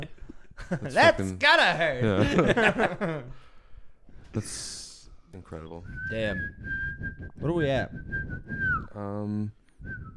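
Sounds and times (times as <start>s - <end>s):
speech: 0.7s - 3.5s, 4.4s - 10.1s
laughter: 2.0s - 3.3s
person whistling into the microphone: 5.8s - 10.1s.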